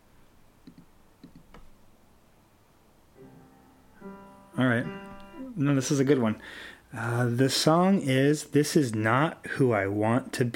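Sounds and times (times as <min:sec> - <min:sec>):
soft hiss: 0:00.0 - 0:10.5
computer mouse double-clicks: 0:00.6 - 0:01.7
speech: 0:04.6 - 0:05.0, 0:05.6 - 0:10.5.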